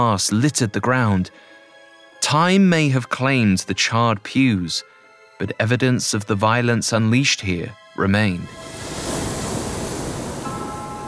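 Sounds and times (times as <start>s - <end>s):
speech: 0.0s - 1.6s, 2.2s - 9.0s
waves crashing against steep cliffs: 8.5s - 11.0s.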